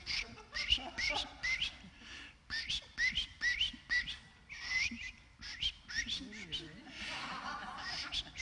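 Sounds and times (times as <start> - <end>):
person laughing: 0.0 - 1.8, 6.2 - 8.4
person whistling bird-like trills imitating birdsong: 0.1 - 1.8, 2.5 - 6.7, 7.8 - 8.4.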